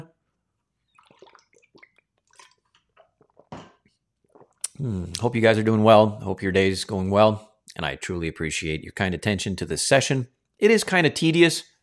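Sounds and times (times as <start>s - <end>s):
person drinking water with small wet sips and clicks: 0.8s - 5.2s
louder gulp or slurp: 0.9s - 5.2s
speech: 4.8s - 11.7s.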